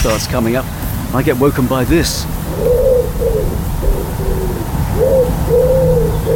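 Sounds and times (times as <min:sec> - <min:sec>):
speech: 0:00.0 - 0:04.3
wood pigeon cooing: 0:02.2 - 0:06.3.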